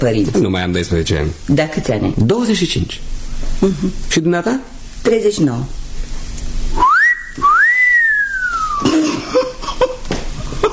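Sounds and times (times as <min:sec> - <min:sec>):
speech: 0:00.0 - 0:05.8
two-part admiring wolf whistle: 0:06.8 - 0:08.8
soft coughs or throat sounds: 0:08.8 - 0:10.0.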